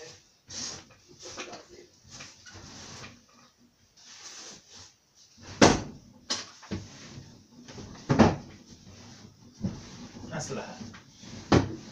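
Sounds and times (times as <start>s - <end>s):
sticking drawers scraping open and shut: 0.5s - 3.4s, 5.4s - 11.9s
drawers knocking shut: 5.6s - 6.0s, 8.0s - 8.5s, 11.5s - 11.8s.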